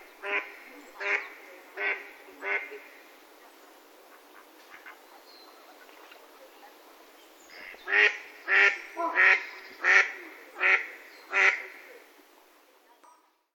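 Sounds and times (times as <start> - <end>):
mallard quacking: 0.2 - 3.0, 4.1 - 5.9, 7.6 - 11.9.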